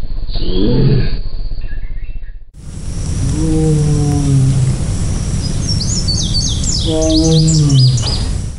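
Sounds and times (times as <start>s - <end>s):
tiger long roar or long call: 0.4s - 1.2s, 2.6s - 8.5s
birds chirping faintly: 2.6s - 8.5s.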